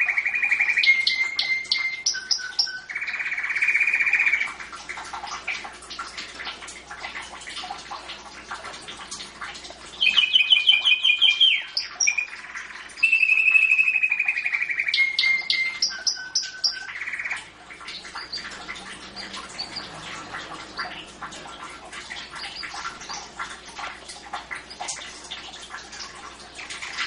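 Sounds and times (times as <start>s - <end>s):
domestic champion singing canary trilling: 0.0s - 4.5s, 10.0s - 20.0s, 22.2s - 23.2s.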